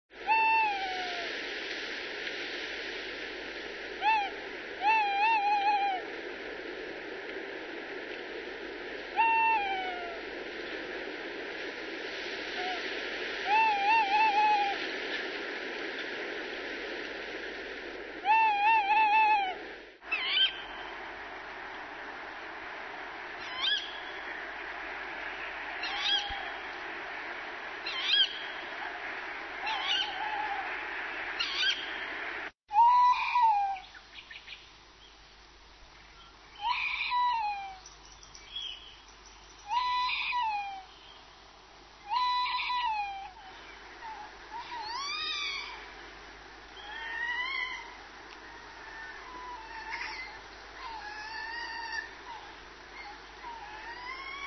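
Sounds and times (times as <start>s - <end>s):
Strix aluco calling: 0.2s - 1.3s, 4.0s - 6.2s, 9.1s - 10.3s, 12.5s - 15.3s, 18.2s - 34.6s, 36.2s - 41.3s, 42.0s - 46.0s, 46.7s - 54.4s.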